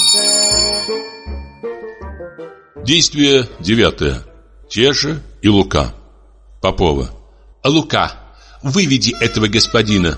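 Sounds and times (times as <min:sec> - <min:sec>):
bell ringing during a stage play: 0:00.0 - 0:02.8
speech: 0:02.9 - 0:06.0, 0:06.6 - 0:10.1.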